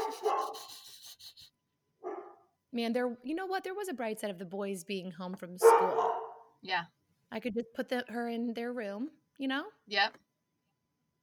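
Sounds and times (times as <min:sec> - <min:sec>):
dog barking: 0:00.0 - 0:00.7, 0:02.0 - 0:02.4, 0:05.6 - 0:06.5
speech: 0:02.8 - 0:10.2.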